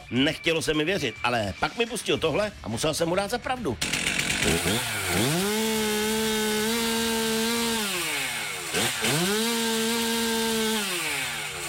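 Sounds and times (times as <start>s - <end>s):
speech: 0.1s - 5.4s
chainsaw cutting wood: 3.8s - 11.6s.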